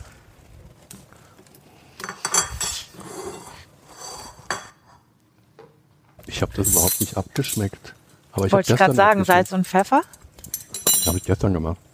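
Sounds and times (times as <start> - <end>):
dishes and utensils clinking and scraping as food is served onto plates: 2.0 - 5.7, 6.6 - 7.8, 8.4 - 11.4
speech: 6.4 - 10.2, 11.0 - 11.8.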